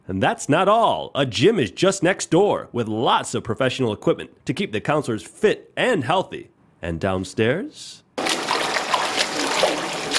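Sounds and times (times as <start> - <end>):
speech: 0.1 - 8.0
water splashing in a standard indoor swimming pool: 8.2 - 10.1.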